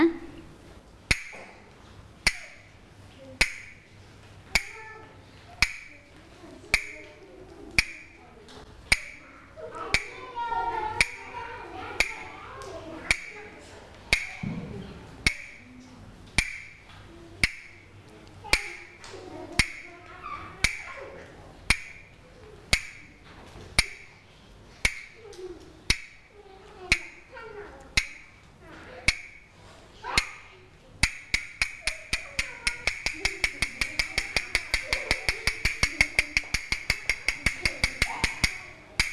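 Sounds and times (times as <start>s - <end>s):
teacher tapping out a rhythm for a children's movement activity: 1.1s - 2.8s, 3.4s - 3.9s, 4.5s - 4.9s, 5.5s - 6.1s, 6.7s - 8.2s, 8.9s - 14.6s, 15.2s - 15.7s, 16.3s - 21.0s, 21.6s - 23.2s, 23.8s - 24.2s, 24.8s - 25.3s, 25.9s - 26.3s, 26.9s - 39.1s
faint murmuring: 2.3s - 16.3s, 17.0s - 39.1s.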